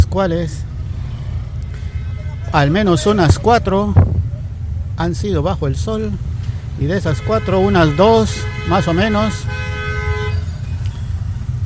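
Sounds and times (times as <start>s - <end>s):
idling engines: 0.0s - 11.6s
low rumble of traffic: 0.0s - 11.6s
speech: 0.1s - 0.7s, 2.5s - 4.2s, 5.0s - 9.7s
car horn honking: 1.5s - 4.6s, 5.8s - 11.3s.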